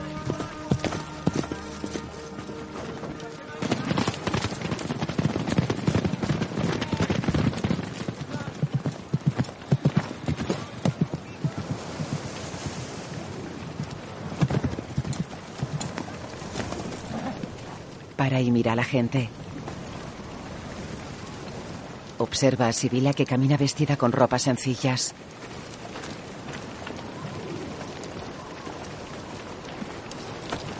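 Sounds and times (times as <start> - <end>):
horse hooves of a rider on horseback clip-clopping: 0.0 - 30.7
speech: 18.4 - 19.4, 22.3 - 25.4.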